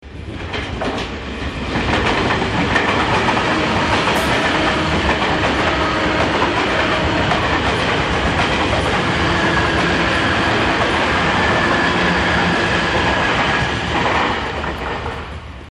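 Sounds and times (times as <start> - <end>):
train: 0.0 - 15.7.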